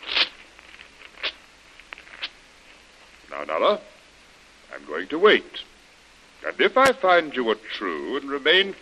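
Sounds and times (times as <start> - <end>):
paper being torn: 0.0 - 0.4
faint crackly ticks: 0.4 - 3.2
speech: 3.4 - 3.9, 4.8 - 5.7, 6.4 - 8.8.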